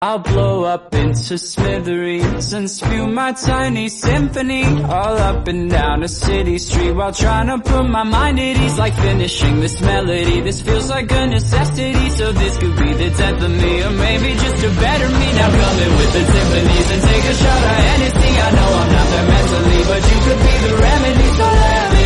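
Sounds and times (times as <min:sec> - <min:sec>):
violin remix: 0:00.4 - 0:22.0.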